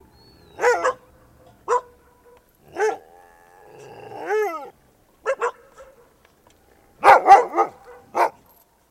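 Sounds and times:
dog barking: 0.6 - 1.1, 1.7 - 3.0, 5.3 - 6.1, 7.0 - 8.4.

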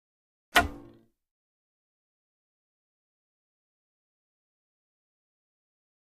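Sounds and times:
bowstring release twang of a bow and arrow: 0.6 - 1.1.

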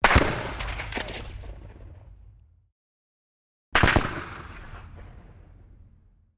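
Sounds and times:
.50 caliber gun single and double shots: 0.0 - 2.2, 3.7 - 5.5.

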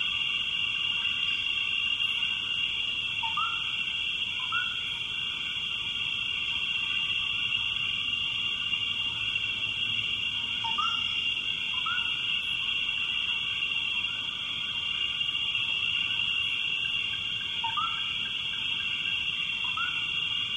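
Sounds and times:
frog calling: 0.0 - 20.5.

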